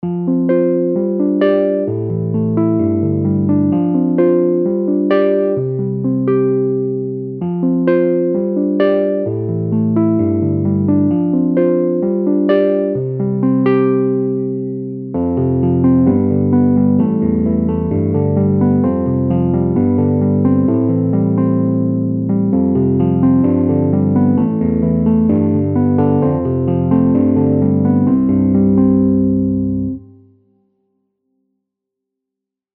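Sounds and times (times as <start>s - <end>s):
electric piano with medium dynamics: 0.0s - 30.3s.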